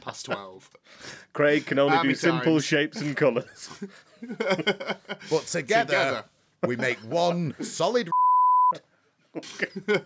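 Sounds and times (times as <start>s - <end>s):
speech: 0.1s - 10.0s
laughter: 3.0s - 5.8s, 9.4s - 10.0s
censor bleep tone: 8.1s - 8.8s.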